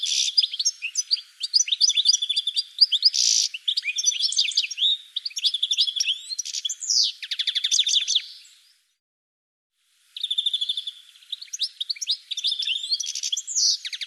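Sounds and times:
bird giving rapid high chirps, short whistles and buzzy notes: 0.0 - 8.5, 10.2 - 14.0.

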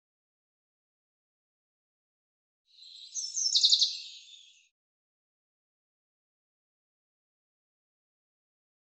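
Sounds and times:
common chaffinch singing: 2.8 - 4.7.

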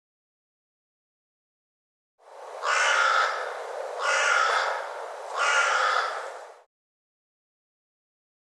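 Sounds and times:
crow-like bird cawing harshly: 2.6 - 6.5.

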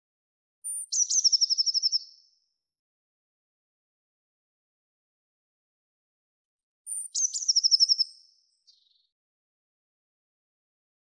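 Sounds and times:
Eurasian blue tit calling: 0.6 - 2.0, 6.9 - 8.2.

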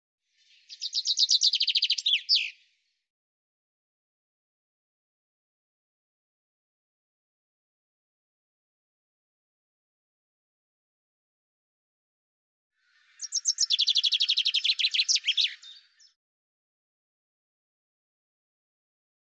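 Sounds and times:
common chaffinch singing: 0.6 - 2.6, 13.1 - 16.2
speech: 0.7 - 1.0.

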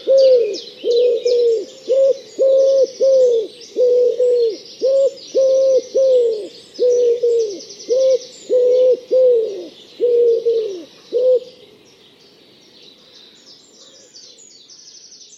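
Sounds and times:
bird repeating soft hollow cooing notes: 0.0 - 11.6
thin high twittering from other birds: 0.0 - 15.3.

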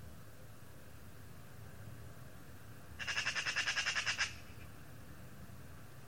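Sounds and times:
Eurasian magpie rattling chatter: 3.0 - 4.4.

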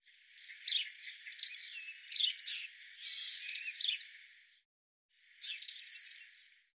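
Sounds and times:
Eurasian blue tit giving rapid buzzy churrs with high thin notes: 0.4 - 4.1, 5.4 - 6.2.

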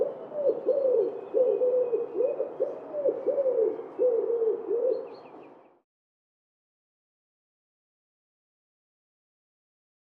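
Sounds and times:
wood pigeon cooing: 0.0 - 5.4.

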